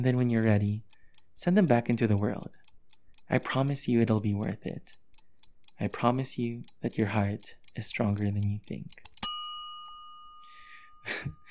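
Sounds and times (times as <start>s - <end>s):
speech: 0.0s - 2.6s, 3.3s - 5.0s, 5.8s - 9.1s, 11.0s - 11.4s
bright bell ding signaling end of segment: 9.2s - 11.1s.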